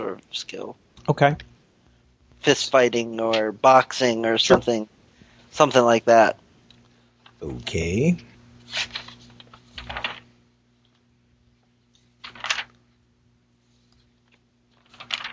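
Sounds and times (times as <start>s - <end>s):
faint steady hum: 0.0s - 15.3s
speech: 0.2s - 1.5s, 2.4s - 6.4s, 7.4s - 9.0s
pages of a physical book turning: 8.6s - 11.0s, 11.9s - 12.8s, 13.6s - 15.3s.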